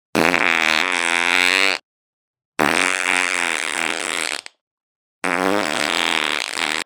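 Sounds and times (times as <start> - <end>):
fart: 0.2 - 1.8, 2.6 - 4.6, 5.2 - 6.8.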